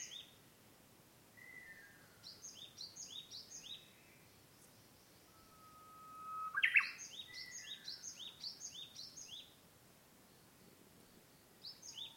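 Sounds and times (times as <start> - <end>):
Japanese bush warbler song, uguisu, level whistle and ornamented phrase: 1.4 - 9.6, 11.6 - 12.1.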